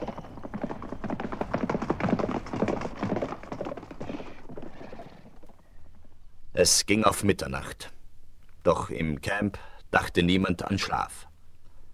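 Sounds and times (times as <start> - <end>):
horse galloping along a river at night: 0.0 - 6.1
speech: 6.6 - 8.0, 8.7 - 11.3.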